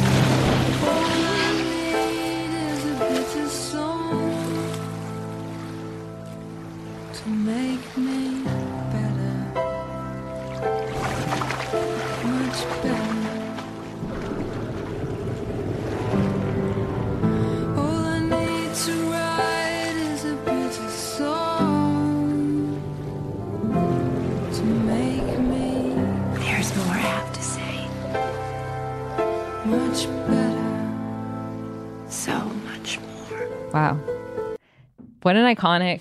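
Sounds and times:
water splashing and sloshing: 0.0 - 9.1, 10.2 - 33.6
sustained music: 0.0 - 35.1
singing voice: 0.8 - 4.8, 7.2 - 9.8, 12.2 - 13.6, 17.6 - 23.0, 24.4 - 28.0, 29.6 - 31.1
speech: 35.3 - 36.0.

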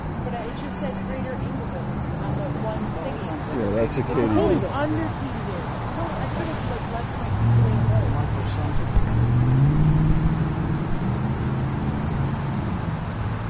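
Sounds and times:
broadband road noise: 0.0 - 13.4
voices: 0.1 - 9.2
speech: 0.6 - 9.5
car engine humming driving by: 2.7 - 13.4.

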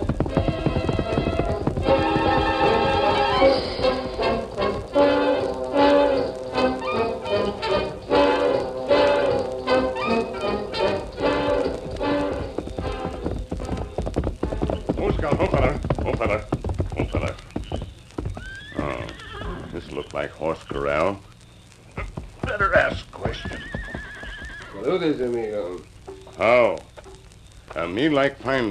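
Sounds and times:
horse hooves clip-clopping: 0.0 - 28.6
horse whinnying: 9.8 - 10.6, 18.3 - 19.8, 23.2 - 24.9
speech: 28.0 - 28.6.

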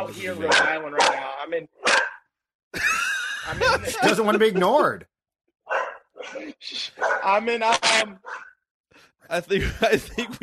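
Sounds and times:
speech: 0.1 - 2.0, 2.7 - 5.1, 6.2 - 8.5, 9.2 - 10.4
dog barking and yapping with whiny howls: 0.4 - 2.3, 4.4 - 4.9, 5.6 - 7.4, 8.2 - 8.6
laughter: 2.7 - 4.8, 9.4 - 10.4.

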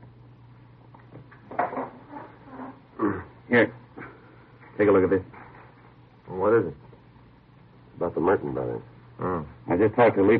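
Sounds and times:
low room hum: 0.0 - 10.3
door swinging shut with a soft clunk: 1.2 - 2.8
speech: 3.0 - 3.8, 4.8 - 5.4, 8.2 - 10.3.

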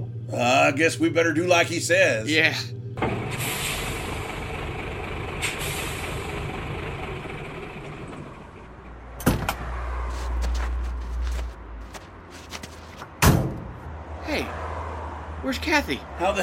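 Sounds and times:
truck idling with a low rumble: 0.0 - 13.9
speech: 0.3 - 3.7, 15.7 - 16.4
truck doors slamming: 9.2 - 9.7, 13.0 - 13.8
people climbing out of a truck rustling and shuffling: 10.1 - 13.1.

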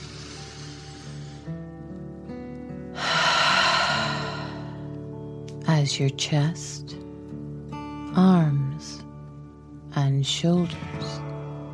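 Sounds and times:
deep dragon breath from a relaxation exercise for children: 0.0 - 1.5, 3.0 - 4.9
soft sustained music: 0.0 - 11.7
speech: 5.8 - 7.0, 10.2 - 11.0.

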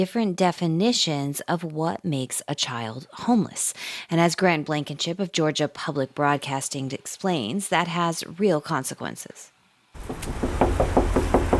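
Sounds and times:
speech: 0.0 - 11.0
sharp knocks on a motel room door: 10.0 - 11.5.

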